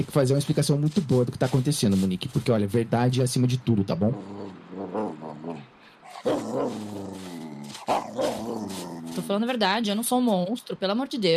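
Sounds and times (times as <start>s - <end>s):
speech: 0.0s - 11.3s
softer rhythmic yelping: 4.2s - 9.4s
dog barking loudly: 7.8s - 8.8s.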